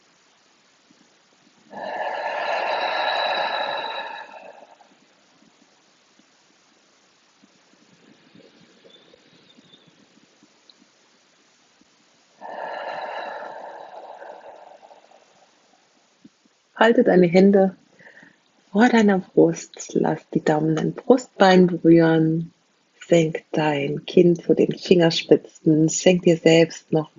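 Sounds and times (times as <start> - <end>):
soft faint hiss: 0.0 - 27.1
deep belly breathing during a guided relaxation and stretching session: 1.7 - 5.0, 12.4 - 16.0, 17.9 - 18.5
speech: 16.8 - 17.8, 18.8 - 22.5, 23.1 - 27.1.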